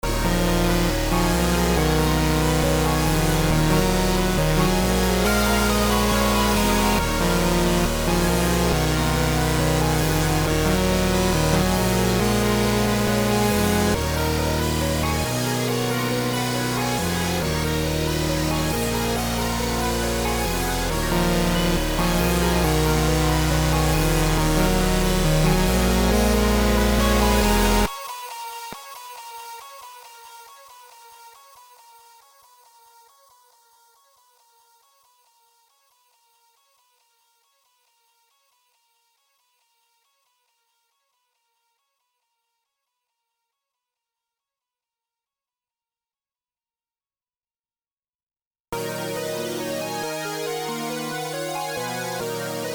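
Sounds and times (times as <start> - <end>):
wah-wah loop: 0.0 - 28.3, 48.8 - 52.7.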